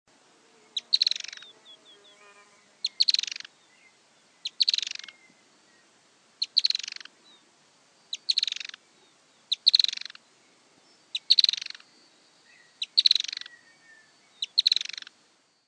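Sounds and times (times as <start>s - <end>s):
firewood-gatherer Anumbius annumbi chattering call: 0.8s - 2.2s, 2.8s - 3.5s, 4.4s - 5.2s, 6.4s - 7.1s, 8.1s - 8.8s, 9.5s - 10.2s, 11.1s - 11.8s, 12.8s - 13.6s, 14.4s - 15.1s.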